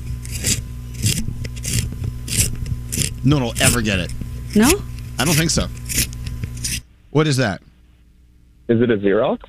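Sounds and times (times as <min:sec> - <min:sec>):
pencil being sharpened: 0:00.0 - 0:06.8
low hum: 0:00.0 - 0:09.4
speech: 0:03.0 - 0:06.2, 0:07.1 - 0:07.6, 0:08.7 - 0:09.4.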